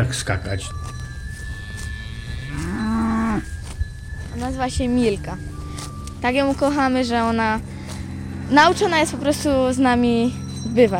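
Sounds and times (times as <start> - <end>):
speech: 0.0 - 1.0, 4.4 - 5.6, 6.2 - 7.7, 8.5 - 10.9
cow mooing: 1.6 - 3.6, 5.1 - 6.2
low rumble: 3.3 - 10.6.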